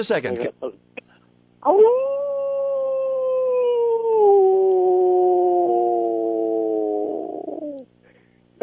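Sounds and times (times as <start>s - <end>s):
person imitating a wolf howl: 1.6s - 7.9s.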